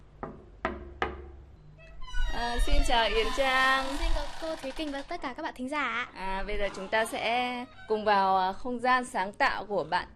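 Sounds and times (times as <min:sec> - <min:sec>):
knocking on a door: 0:00.2 - 0:01.4
speech: 0:02.4 - 0:10.1.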